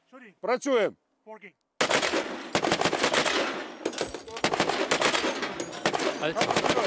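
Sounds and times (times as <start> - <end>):
heavy machine gun firing in a video game: 1.8 - 6.8.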